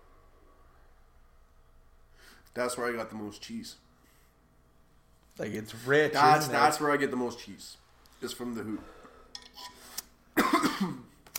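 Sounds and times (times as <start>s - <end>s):
speech: 2.6s - 3.9s, 5.4s - 9.0s, 10.8s - 11.1s
raspy cough after smoking: 10.4s - 11.1s.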